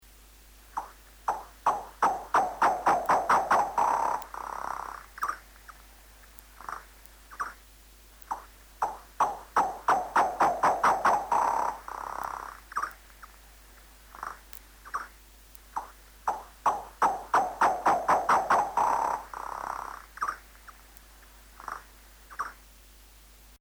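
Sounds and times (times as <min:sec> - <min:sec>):
noctule bat courtship trill slowed down: 0:00.7 - 0:07.6, 0:08.2 - 0:13.4, 0:14.1 - 0:20.9.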